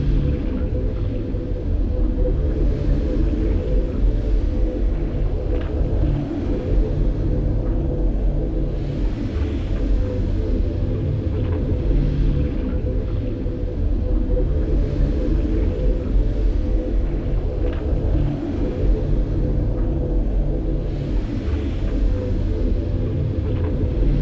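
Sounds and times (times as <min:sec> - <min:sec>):
ambient star hum of planets: 0:00.0 - 0:24.2.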